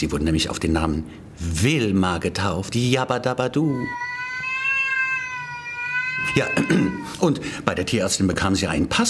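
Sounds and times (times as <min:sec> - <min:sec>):
speech: 0:00.0 - 0:04.1, 0:06.3 - 0:09.0
cat meowing with slightly wavering pitch: 0:03.7 - 0:07.2.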